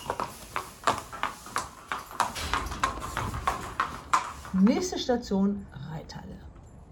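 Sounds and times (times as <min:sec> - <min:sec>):
racehorse hooves walking during morning training warm-up: 0:00.0 - 0:05.2
speech: 0:04.6 - 0:06.2.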